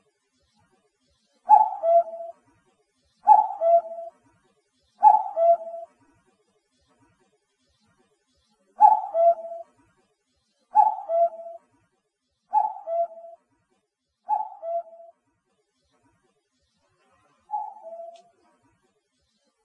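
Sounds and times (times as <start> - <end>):
common cuckoo giving descending cu-coo calls: 1.5 - 2.4, 3.2 - 4.1, 5.0 - 5.9, 8.8 - 9.7, 10.7 - 11.6, 12.5 - 13.4, 14.3 - 15.2, 17.5 - 18.3.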